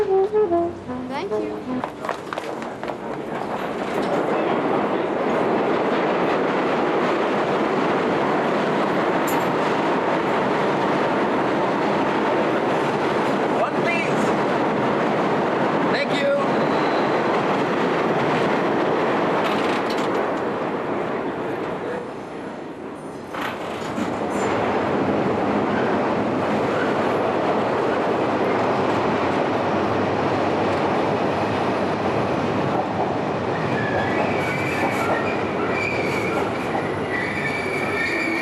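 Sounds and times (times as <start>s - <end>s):
subway train rumbling on rails: 0.0s - 38.4s
metallic squeals and clanks of a subway train: 33.7s - 38.4s.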